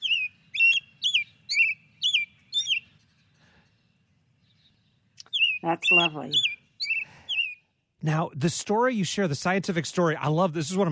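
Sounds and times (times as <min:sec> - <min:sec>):
American robin singing warbling phrases: 0:00.0 - 0:08.0
speech: 0:05.6 - 0:06.6, 0:08.0 - 0:10.8.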